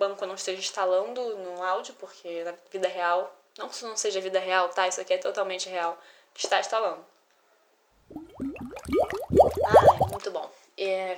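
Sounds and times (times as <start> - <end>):
speech: 0.0 - 7.1, 8.1 - 9.8, 10.8 - 11.1
person sipping and swallowing water: 8.0 - 10.2.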